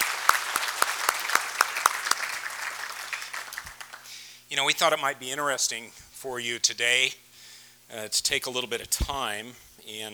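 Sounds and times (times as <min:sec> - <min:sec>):
conference audience applauding: 0:00.0 - 0:04.2
speech: 0:04.5 - 0:07.2, 0:07.9 - 0:10.1.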